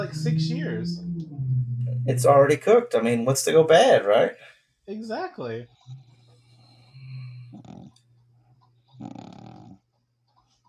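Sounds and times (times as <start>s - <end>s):
speech: 0.0s - 1.4s, 2.0s - 6.0s
steady low hum: 0.0s - 8.5s
rough rasping snoring: 5.6s - 8.0s, 8.9s - 9.9s.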